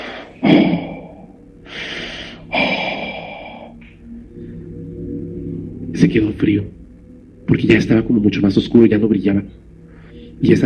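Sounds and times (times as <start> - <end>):
heavy raspy breathing: 0.0 - 4.9
speech: 6.0 - 6.8, 7.5 - 9.7, 10.4 - 10.6.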